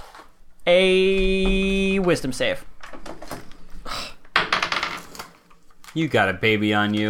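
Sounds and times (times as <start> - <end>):
speech: 0.7 - 2.7, 6.0 - 7.0
dice rolling on a hard tabletop during a tabletop role-playing game: 4.3 - 5.6.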